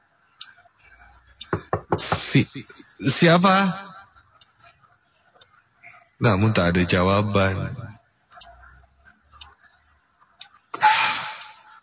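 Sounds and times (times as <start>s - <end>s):
faint ticks and clicks: 0.0s - 2.5s, 3.2s - 10.8s
knocking on a bedroom door late at night: 1.4s - 2.3s
speech: 2.0s - 3.9s, 6.2s - 7.8s.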